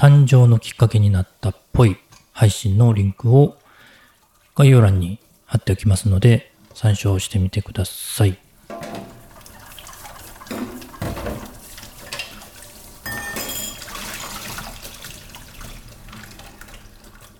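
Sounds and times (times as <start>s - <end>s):
speech: 0.0s - 3.6s, 4.6s - 8.9s
running tap water: 0.0s - 17.3s
plates and utensils clinking: 8.6s - 14.7s.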